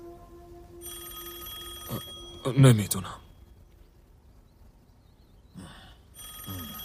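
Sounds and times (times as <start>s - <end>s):
police office telephone ringing in electronic bursts: 0.8s - 2.8s, 6.2s - 6.8s
speech: 1.9s - 3.2s.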